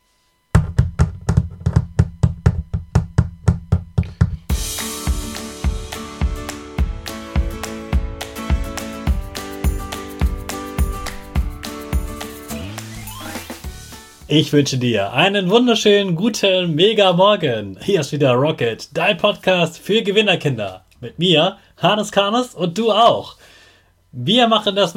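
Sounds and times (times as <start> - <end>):
loud hollow knocking from above: 0.6 - 4.5
upbeat music: 4.5 - 15.4
speech: 14.3 - 23.5, 24.1 - 24.9.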